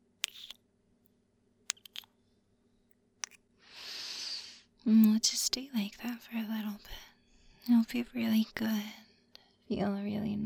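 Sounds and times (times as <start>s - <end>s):
wet kissing smacks: 0.2s - 0.5s
speech: 4.9s - 7.0s, 7.6s - 9.0s, 9.7s - 10.4s.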